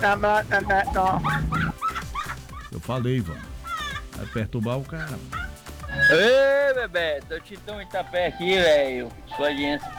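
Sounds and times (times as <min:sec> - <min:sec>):
speech: 0:00.0 - 0:01.8, 0:02.8 - 0:03.6, 0:04.2 - 0:09.9
laughter: 0:00.0 - 0:09.9
dog whimpering and yipping: 0:00.7 - 0:02.7, 0:03.4 - 0:04.1, 0:05.1 - 0:06.4.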